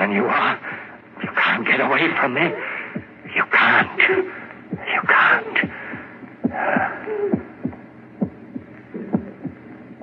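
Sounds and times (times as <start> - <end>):
speech: 0.1 - 0.7, 1.6 - 2.7, 3.4 - 5.8
person's heart beating: 1.2 - 2.2, 2.9 - 10.0
breathy rush: 2.5 - 7.7.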